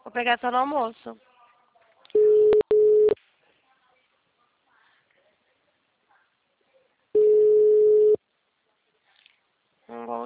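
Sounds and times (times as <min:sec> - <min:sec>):
speech: 0:00.2 - 0:01.3, 0:10.0 - 0:10.2
telephone line tone while calling: 0:02.2 - 0:03.2, 0:07.2 - 0:08.2.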